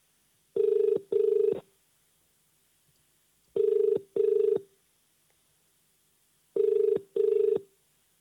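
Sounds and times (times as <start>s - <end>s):
telephone ringing tone on an unanswered call: 0.6s - 1.6s, 3.6s - 4.6s, 6.6s - 7.6s.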